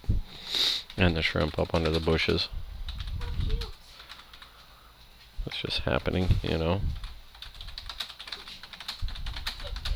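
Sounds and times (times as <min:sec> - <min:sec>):
rapid typing on a computer keyboard: 0:00.9 - 0:04.6, 0:07.0 - 0:09.9
speech: 0:01.0 - 0:02.6, 0:05.6 - 0:07.0.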